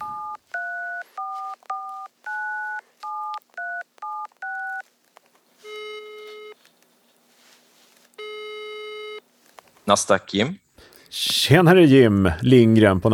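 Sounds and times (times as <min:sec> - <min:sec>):
dual-pitched phone keypad tones dialing a number: 0:00.0 - 0:04.9, 0:05.6 - 0:06.6, 0:08.2 - 0:09.2
speech: 0:09.9 - 0:13.1.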